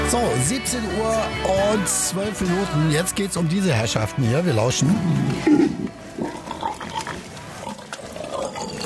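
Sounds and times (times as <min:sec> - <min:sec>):
speech: 0:00.1 - 0:05.9
wild boars grunting and snuffling: 0:04.8 - 0:08.8.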